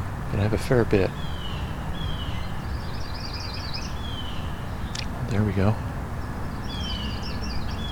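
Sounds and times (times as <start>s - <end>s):
speech: 0.3s - 1.4s, 5.3s - 5.9s
yellow-rumped warbler singing faint trilling phrases: 1.1s - 5.1s, 6.5s - 7.9s.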